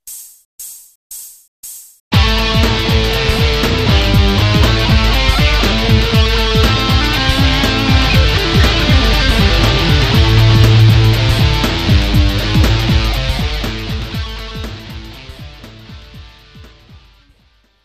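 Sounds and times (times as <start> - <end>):
guitar lick: 2.2 - 15.5.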